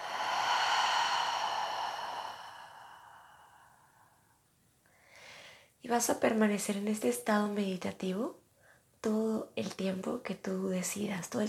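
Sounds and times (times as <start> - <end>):
deep breath in through the nose and out through the mouth during guided meditation: 0.0 - 5.8
speech: 5.9 - 8.4, 9.0 - 11.4.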